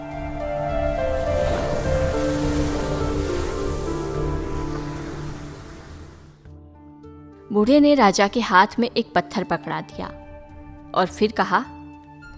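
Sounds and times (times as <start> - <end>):
low humming drone: 0.0 - 6.4
large ocean waves breaking against the shore: 0.0 - 6.5
speech: 7.6 - 10.2, 10.9 - 11.8.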